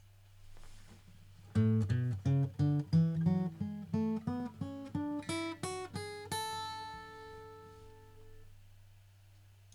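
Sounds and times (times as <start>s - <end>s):
guitar playing an A major scale: 1.5s - 8.4s.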